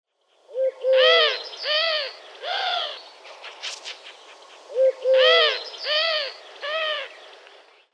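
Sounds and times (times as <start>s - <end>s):
rustle: 0.1s - 7.9s
Eurasian collared dove cooing in Les Grangettes, Switzerland: 0.5s - 3.0s, 4.7s - 7.1s.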